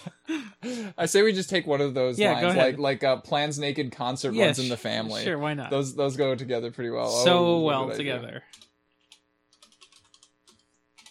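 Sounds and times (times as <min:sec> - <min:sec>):
speech: 0:00.0 - 0:08.6
faint steady hum: 0:00.0 - 0:08.7
typing on a computer keyboard: 0:08.5 - 0:11.0.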